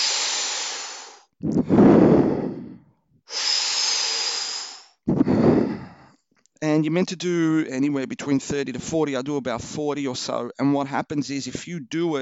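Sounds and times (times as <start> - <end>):
deep breaths in through the mouth as a breathing exercise: 0.0 - 6.2
relaxed exhale without force as a breathing exercise: 0.0 - 6.2
speech: 6.7 - 12.2.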